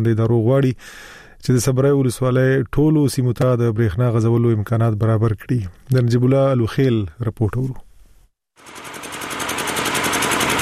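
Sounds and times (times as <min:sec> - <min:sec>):
speech: 0:00.0 - 0:07.8
old electricity generator droning in a bazaar in Sabari district, Khost: 0:08.6 - 0:10.6.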